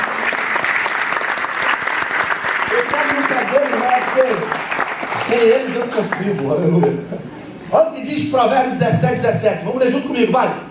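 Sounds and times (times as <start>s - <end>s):
church service audience applauding: 0.0s - 6.9s
speech: 3.0s - 10.6s.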